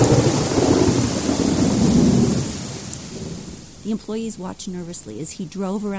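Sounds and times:
deep rolling thunder: 0:00.0 - 0:04.0
torrential downpour of heavy rain in a thunderstorm: 0:00.0 - 0:05.9
speech: 0:03.9 - 0:05.9.

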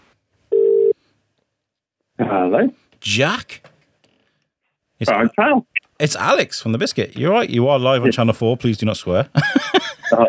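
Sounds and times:
short electronic telephone ring tone: 0:00.5 - 0:01.0
speech: 0:02.3 - 0:03.7, 0:05.0 - 0:10.2
laughter: 0:09.3 - 0:10.2.

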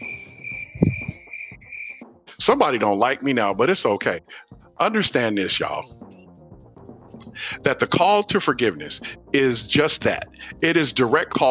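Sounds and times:
crickets chirping in a high continuous trill: 0:00.0 - 0:02.0
soft low thumps: 0:00.6 - 0:01.2
speech: 0:02.4 - 0:06.0, 0:07.4 - 0:11.4.

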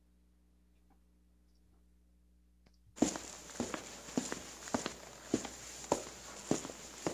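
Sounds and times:
faint hiss: 0:00.5 - 0:07.1
footsteps: 0:03.0 - 0:07.1.

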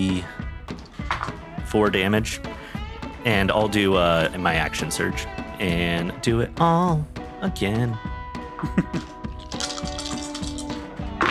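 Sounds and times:
speech: 0:01.7 - 0:02.5, 0:03.2 - 0:09.1
laughter: 0:08.4 - 0:09.2
two dice rolled in a game clattering across a tabletop: 0:09.0 - 0:11.3.

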